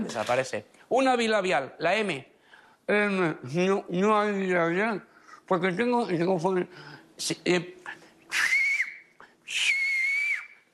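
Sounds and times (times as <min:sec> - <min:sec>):
speech: 0:00.0 - 0:02.3, 0:02.9 - 0:08.5
Silbo Gomero whistled language phrases: 0:08.3 - 0:10.7.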